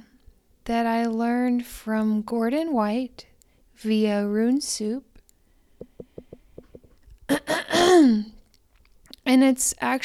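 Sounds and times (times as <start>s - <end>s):
speech: 0.7s - 5.1s, 8.0s - 8.3s, 9.3s - 10.0s
person clearing throat: 7.3s - 8.3s.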